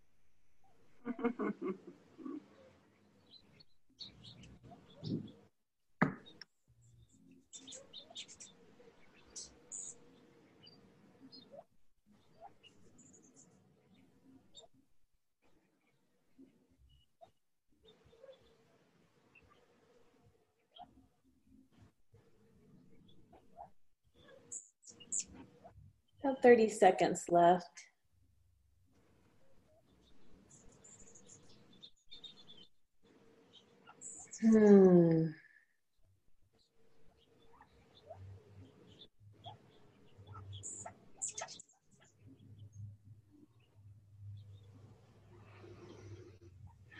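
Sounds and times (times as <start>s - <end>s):
laughter: 1.0s - 2.4s
speech: 1.1s - 2.5s, 26.2s - 27.9s, 34.4s - 35.4s
small pet birds chirping and tweeting from another room: 2.5s - 5.5s, 6.2s - 14.8s, 16.9s - 18.7s, 20.6s - 21.0s, 23.0s - 25.8s, 29.6s - 34.5s, 36.6s - 46.9s.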